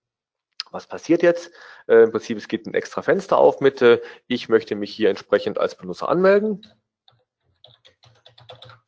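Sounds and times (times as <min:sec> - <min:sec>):
speech: 0:00.7 - 0:06.8
keystrokes on a computer keyboard typing a password: 0:06.6 - 0:08.8.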